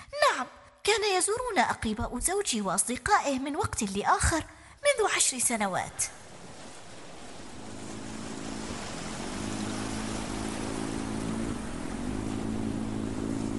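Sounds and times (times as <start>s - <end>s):
speech: 0.4s - 6.2s
rushing wash of a boat cutting through water: 6.1s - 13.5s
boat engine drone: 6.2s - 13.5s.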